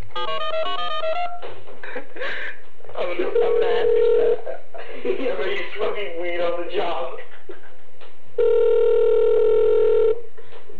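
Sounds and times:
quiet phone line noise: 0.0s - 10.7s
phone line ringing tone on a call to a taxi company: 0.2s - 1.4s, 3.2s - 4.5s, 8.4s - 10.2s
speech: 3.1s - 7.2s.

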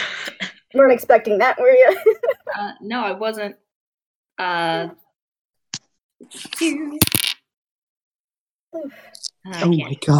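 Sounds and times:
speech: 0.7s - 3.6s, 4.4s - 5.0s, 6.2s - 7.2s, 8.7s - 10.1s
dice clattering across a surface during a tabletop role-playing game: 7.0s - 7.4s.

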